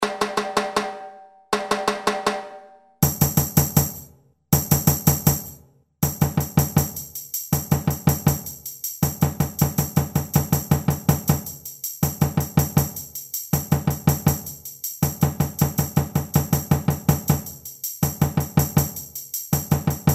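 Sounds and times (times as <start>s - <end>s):
samba reggae surdo drum: 0.0s - 20.1s
samba reggae shaker: 4.6s - 20.1s.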